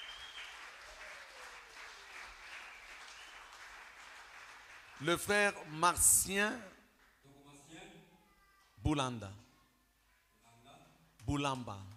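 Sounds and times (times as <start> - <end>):
church congregation applauding during a Sunday service: 0.0 - 7.2
speech: 5.0 - 6.8, 8.9 - 9.4, 11.3 - 11.9.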